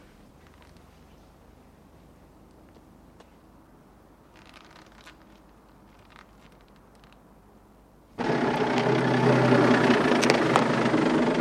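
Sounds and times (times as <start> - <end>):
car engine idling at a church: 8.2 - 11.3.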